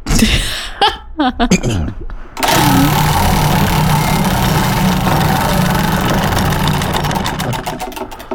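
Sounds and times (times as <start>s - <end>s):
people talking during a morning radio show: 0.1s - 7.6s
wheel of names whirring and ticking: 2.4s - 8.3s.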